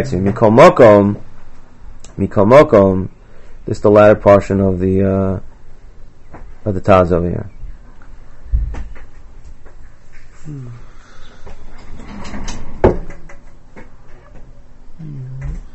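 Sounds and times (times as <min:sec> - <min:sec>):
speech: 0:00.0 - 0:01.2, 0:02.2 - 0:05.5, 0:06.6 - 0:07.5, 0:10.4 - 0:10.8
door thudding shut: 0:12.6 - 0:13.5.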